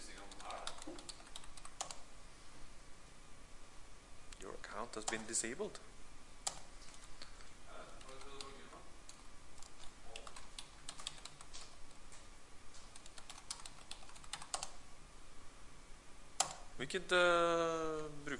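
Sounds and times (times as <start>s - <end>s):
typing on a computer keyboard: 0.2s - 2.0s, 5.0s - 5.3s, 6.4s - 7.4s, 8.0s - 11.8s, 12.8s - 14.8s
speech: 4.8s - 6.0s, 16.8s - 18.3s.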